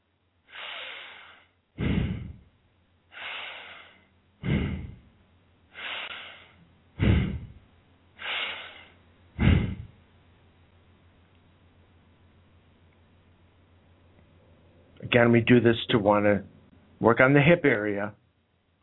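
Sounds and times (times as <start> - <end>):
slow deep breathing during a knee-to-chest stretch: 0.4 - 10.0
speech: 15.1 - 18.2.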